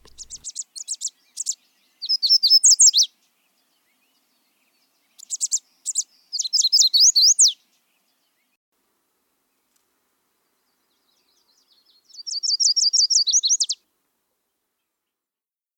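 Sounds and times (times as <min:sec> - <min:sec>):
small songbird singing: 0:00.0 - 0:08.6, 0:10.4 - 0:13.8.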